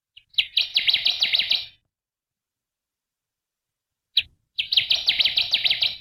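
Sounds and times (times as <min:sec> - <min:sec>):
Connecticut warbler singing rapid rhythmic chip-like notes: 0:00.2 - 0:01.8, 0:04.2 - 0:05.9.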